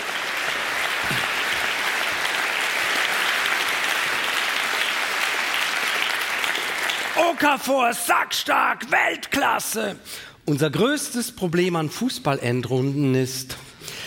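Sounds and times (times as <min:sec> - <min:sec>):
large indoor theatre audience applause: 0:00.0 - 0:07.9
speech: 0:07.2 - 0:14.0.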